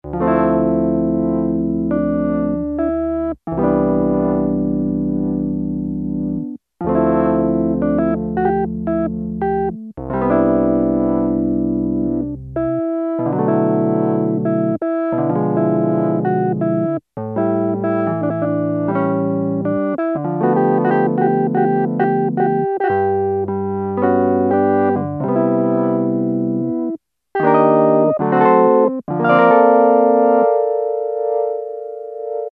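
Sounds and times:
Roland JX-3P electric piano: 0.0s - 32.5s.

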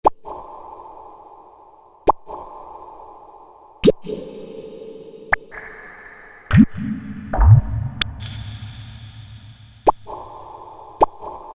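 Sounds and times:
Korg M1 synthesizer drop: 6.5s - 10.2s.

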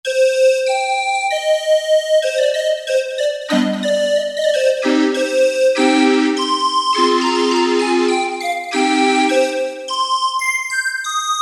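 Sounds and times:
calliope tone from a synthesizer module factory patch: 0.1s - 11.4s.

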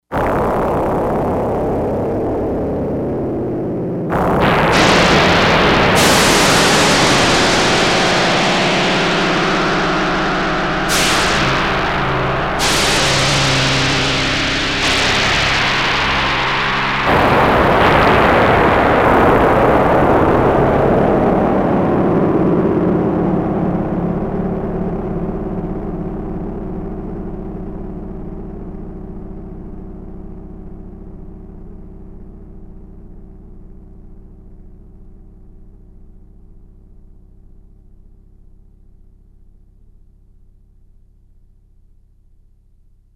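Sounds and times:
storm wind synthesized on a Yamaha DX100 factory patch: 0.2s - 27.6s.

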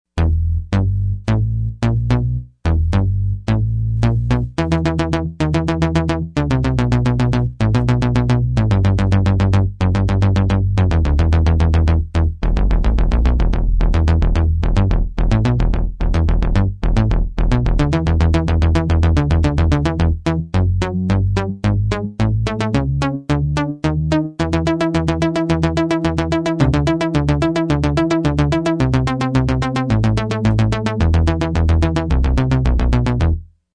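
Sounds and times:
synth bass factory preset: 0.1s - 33.7s.

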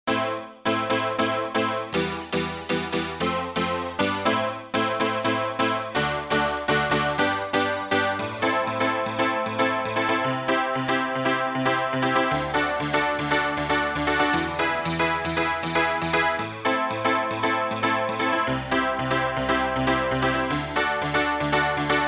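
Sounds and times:
dance piano on a sound module: 0.1s - 22.0s.

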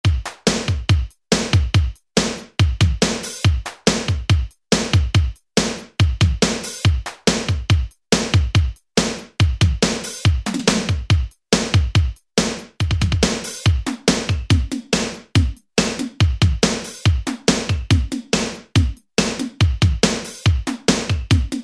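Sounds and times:
drum machine rap beat preset pattern: 0.0s - 21.6s.

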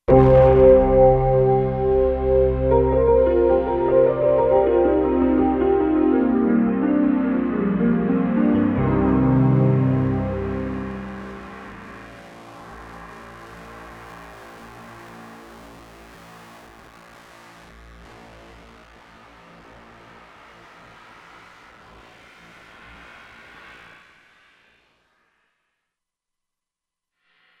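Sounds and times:
Kurzweil K2500X synthesizer sound: 0.0s - 12.3s.

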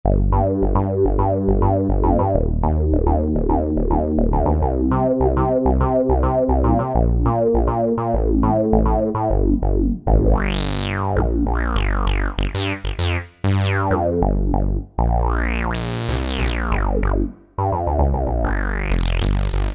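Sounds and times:
synth bass on a Kurzweil K2000: 0.0s - 19.7s.

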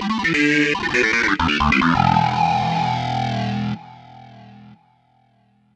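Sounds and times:
Kawai K5000S synthesizer sound: 0.1s - 5.3s.

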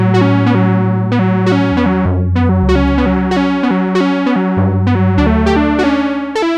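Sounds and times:
synthesizer fourths drop with release: 0.1s - 6.4s.

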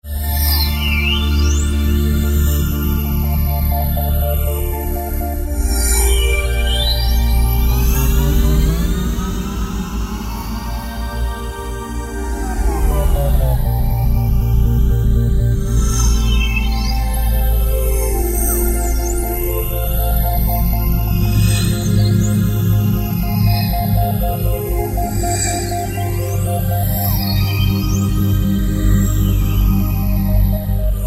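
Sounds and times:
Roland JD-990 synthesizer: 0.0s - 31.0s.

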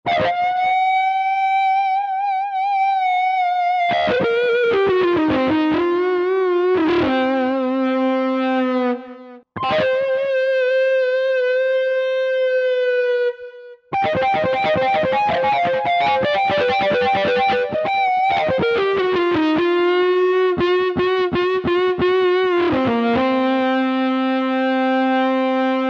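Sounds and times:
distorted guitar patch on Roland JV-2080 synthesizer: 0.0s - 25.8s.

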